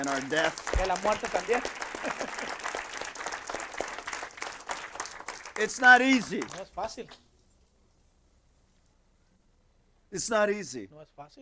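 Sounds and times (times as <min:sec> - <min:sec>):
speech: 0:00.0 - 0:02.4, 0:05.6 - 0:07.2, 0:10.1 - 0:11.3
crowd applauding: 0:00.0 - 0:07.2
laughter: 0:00.8 - 0:03.0.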